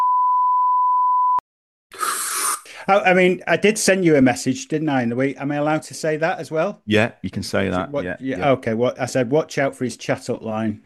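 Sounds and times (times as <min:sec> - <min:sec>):
censor beep over a spoken name: 0:00.0 - 0:01.4
speech: 0:02.8 - 0:10.8.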